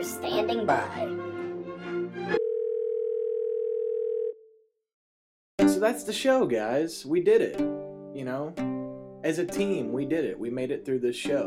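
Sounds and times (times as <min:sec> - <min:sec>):
speech: 0:00.0 - 0:01.4, 0:05.8 - 0:11.4
telephone dial tone: 0:02.4 - 0:04.4.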